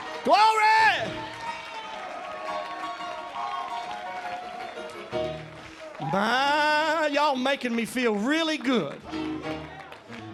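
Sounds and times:
church audience shouting: 0:00.0 - 0:05.1, 0:05.7 - 0:06.9
cheering: 0:00.0 - 0:07.4, 0:08.0 - 0:10.3
church audience clapping: 0:00.0 - 0:10.3
speech: 0:00.2 - 0:01.2, 0:06.1 - 0:09.6.

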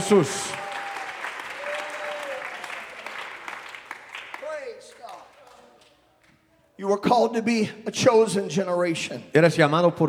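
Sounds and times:
church congregation applauding during a worship service: 0:00.0 - 0:06.4
speech: 0:00.1 - 0:00.6, 0:06.8 - 0:10.0.

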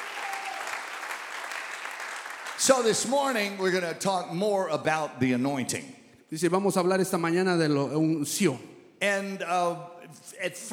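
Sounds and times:
church congregation applauding during a bilingual worship service: 0:00.0 - 0:03.7
speech: 0:02.6 - 0:10.7.

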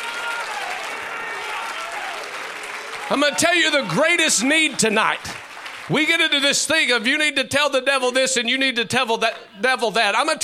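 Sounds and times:
crowd of people clapping their hands: 0:00.0 - 0:07.1
speech: 0:03.1 - 0:10.4.

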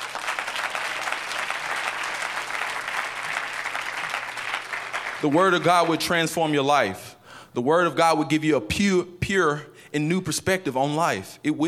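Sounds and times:
crowd clapping: 0:00.0 - 0:06.4
speech: 0:05.2 - 0:11.6.

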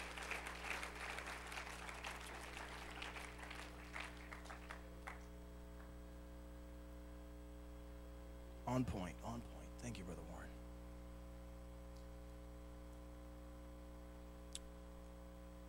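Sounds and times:
crowd clapping enthusiastically: 0:00.0 - 0:06.0
steady low electrical hum: 0:00.0 - 0:15.6
speech: 0:08.7 - 0:10.4.

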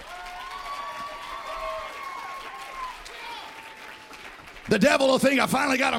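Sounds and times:
audience shouting and whooping: 0:00.0 - 0:04.2
audience clapping hands: 0:00.0 - 0:05.9
speech: 0:04.7 - 0:05.9.

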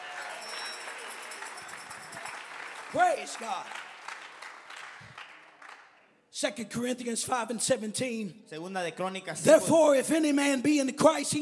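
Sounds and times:
audience clapping: 0:00.0 - 0:06.2
speech: 0:02.9 - 0:03.8, 0:06.4 - 0:11.4.

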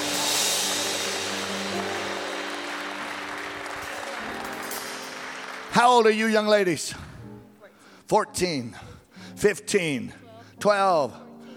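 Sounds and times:
large audience clapping in praise of God: 0:00.0 - 0:06.8
speech: 0:05.8 - 0:07.1, 0:08.1 - 0:11.2.

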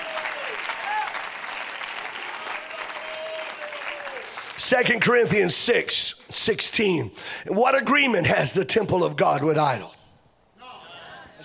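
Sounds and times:
audience clapping hands: 0:00.0 - 0:04.9
speech: 0:04.7 - 0:10.0.

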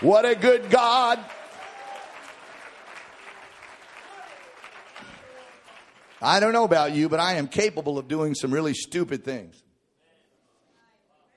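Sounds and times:
speech: 0:00.0 - 0:01.4, 0:06.2 - 0:09.6
congregation clapping their hands: 0:00.0 - 0:07.4.

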